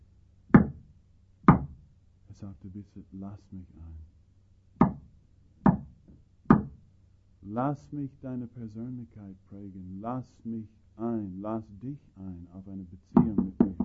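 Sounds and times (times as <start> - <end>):
knocking on a door: 0.6 - 0.8, 1.5 - 1.8, 4.8 - 5.9, 6.5 - 6.8, 13.2 - 13.8
speech: 2.4 - 4.2, 7.5 - 13.7.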